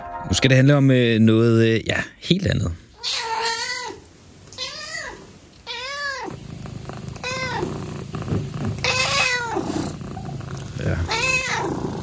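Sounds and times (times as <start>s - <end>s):
speech: 0.4s - 2.8s
cat meowing: 3.0s - 6.4s, 7.2s - 7.9s, 8.8s - 12.0s
cat purring: 6.0s - 12.0s.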